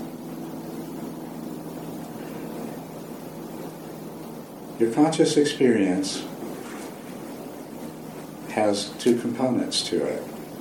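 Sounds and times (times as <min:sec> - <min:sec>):
airplane engine droning overhead: 0:00.0 - 0:10.5
speech: 0:04.8 - 0:06.3, 0:08.6 - 0:10.3.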